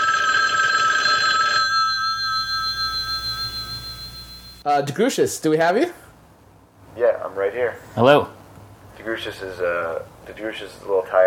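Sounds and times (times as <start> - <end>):
telephone ringing on an outgoing call: 0.0 - 4.6
low hum: 2.2 - 4.6
speech: 4.7 - 6.0, 7.0 - 8.4, 9.0 - 11.2.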